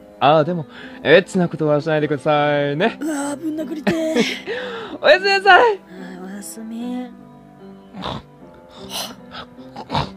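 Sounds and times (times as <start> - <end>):
speech: 0.2 - 7.2, 8.0 - 10.1
person snoring while asleep: 7.9 - 10.1
quieter wheezy rasp: 7.9 - 10.1.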